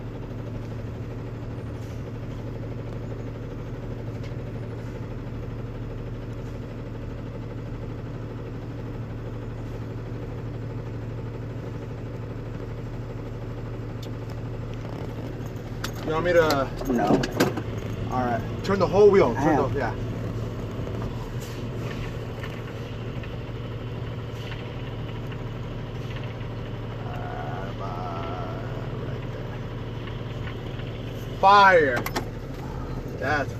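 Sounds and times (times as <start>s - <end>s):
large truck engine idling while backing up beside a building: 0.0s - 33.5s
speech: 16.1s - 17.6s, 18.2s - 20.1s, 31.4s - 32.2s, 33.2s - 33.5s.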